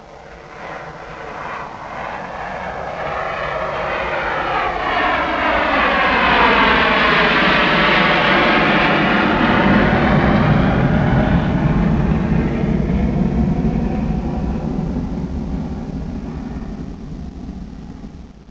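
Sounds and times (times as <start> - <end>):
jet taking off: 0.0 - 18.4.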